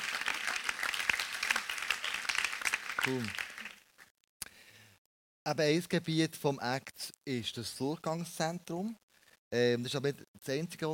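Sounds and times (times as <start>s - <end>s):
audience applauding: 0.0s - 3.9s
speech: 3.0s - 3.4s, 5.5s - 10.9s.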